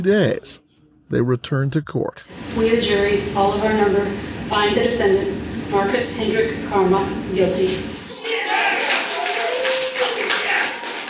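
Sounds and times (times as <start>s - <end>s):
speech: 0.0s - 8.0s
courtroom crowd applauding after a guilty verdict: 8.1s - 11.0s.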